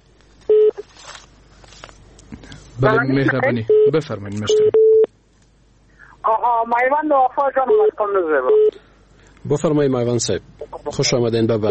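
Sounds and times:
telephone beep for an incoming call: 0.5 - 0.8, 3.7 - 5.1, 7.7 - 8.7
speech: 2.8 - 4.8, 6.5 - 8.8, 9.5 - 11.6.

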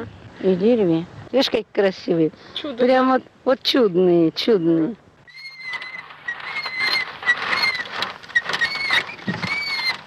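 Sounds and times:
speech: 0.0 - 5.0
small child's unoiled tricycle squeaking and creaking: 4.4 - 10.0
soft rattling and patter: 5.3 - 10.0.

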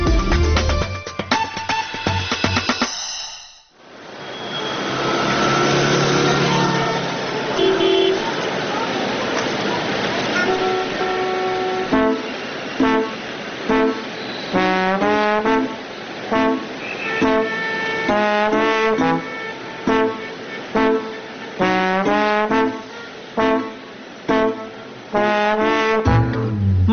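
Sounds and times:
rhythmic music: 0.0 - 3.1, 26.0 - 26.9
car engine noise in street traffic: 3.8 - 25.2
busy street traffic rumbling with cars waiting at traffic lights: 3.8 - 26.9
car horns honking in street traffic: 4.3 - 8.4, 10.3 - 26.6
person speaking: 26.4 - 26.9.

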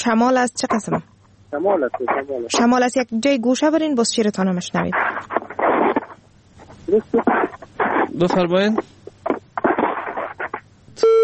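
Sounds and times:
speech: 0.0 - 5.3, 6.9 - 7.5, 8.2 - 9.0, 11.0 - 11.2
garbled voice-like sounds: 4.9 - 10.6
telephone busy tone after a call disconnects: 11.0 - 11.2.

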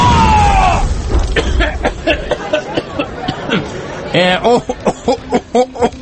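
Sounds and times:
loud rumbling explosion boom: 0.0 - 3.0
people talking and chattering: 0.0 - 6.0
laughter: 1.3 - 6.0.

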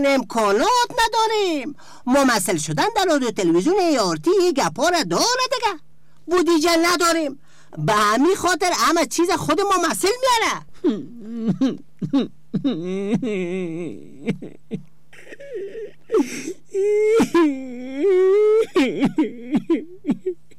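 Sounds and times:
speech: 0.0 - 14.9, 15.5 - 20.4
man crying and wailing: 10.8 - 20.5.

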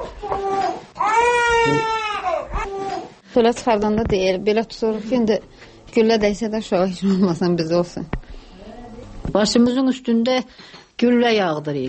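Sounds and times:
two-month-old baby crying inside a house: 0.0 - 3.2
speech: 3.4 - 8.2, 9.3 - 11.8.

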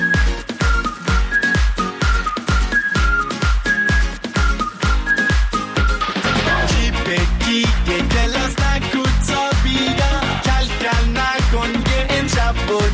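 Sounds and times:
bright whistled melody: 0.0 - 6.7
upbeat music track: 0.0 - 12.9.

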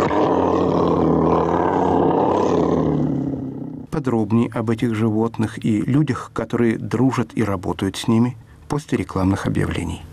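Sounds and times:
lion roaring: 0.0 - 3.9
speech: 4.0 - 10.1.

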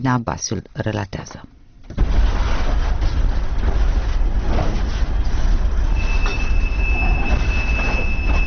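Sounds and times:
speech: 0.0 - 1.6
train rumbling in a railway depot in Chișinău Moldova: 1.8 - 8.4
thin sustained high squeal of train wheels: 5.9 - 8.4.

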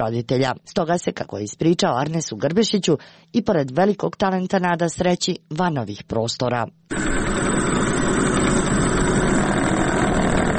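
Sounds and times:
speech: 0.0 - 7.8
old lathe for making rings and spinning tops running: 6.9 - 10.5.

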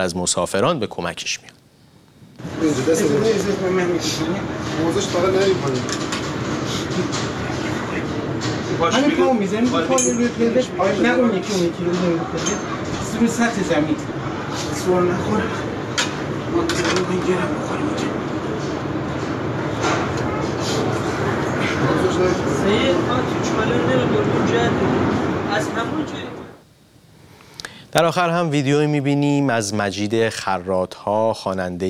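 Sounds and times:
speech: 0.0 - 1.6, 2.5 - 7.5, 8.7 - 14.2, 14.8 - 15.7, 16.6 - 17.9, 22.2 - 26.4, 27.9 - 31.8
passengers talking and murmuring inside a train carriage: 1.3 - 26.7
train carriage rumbling hum: 1.8 - 26.7.

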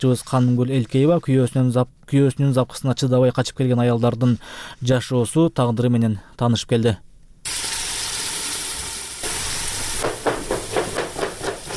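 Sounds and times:
speech: 0.0 - 7.7
steady sizzling hiss: 7.5 - 11.7
knife chopping carrots with force in a shelter kitchen: 10.0 - 11.7.

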